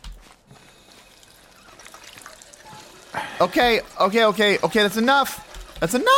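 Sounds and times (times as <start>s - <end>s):
water gushing and trickling from a hand pump: 1.2s - 6.1s
speech: 3.2s - 6.1s.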